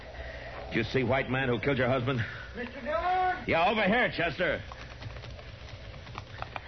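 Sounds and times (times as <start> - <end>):
speech: 0.7 - 4.7
horse hooves clip-clopping at a slow walk: 2.6 - 6.6.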